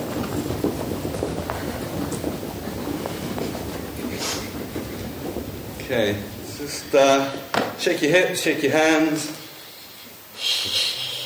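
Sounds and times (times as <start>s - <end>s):
many people stamping their feet on a floor during a breathing exercise: 0.0s - 8.0s
speech: 5.9s - 9.4s.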